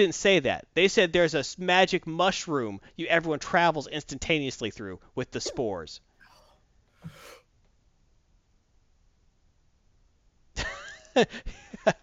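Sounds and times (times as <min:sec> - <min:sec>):
speech: 0:00.0 - 0:06.1, 0:07.0 - 0:07.4, 0:10.6 - 0:12.0
jerky gulping hiccups: 0:05.4 - 0:07.4.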